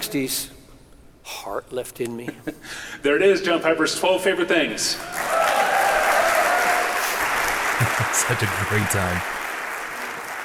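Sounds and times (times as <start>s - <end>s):
speech: 0.1s - 0.6s, 1.2s - 5.3s, 8.0s - 9.4s
large conference audience applauding: 5.0s - 10.4s
laughter: 7.6s - 9.1s.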